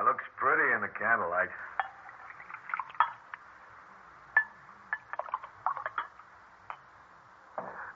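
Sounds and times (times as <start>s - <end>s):
speech: 0.1s - 1.8s
wine poured into a glass: 1.7s - 3.4s, 4.4s - 6.8s
light clicks and glassy taps: 1.8s - 3.4s, 4.4s - 6.9s.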